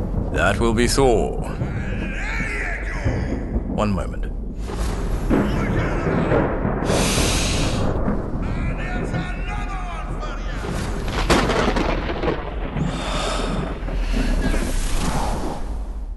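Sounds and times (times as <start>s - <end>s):
deep rolling thunder: 0.0s - 16.1s
rain: 0.0s - 16.1s
speech: 0.3s - 1.7s, 3.8s - 4.3s.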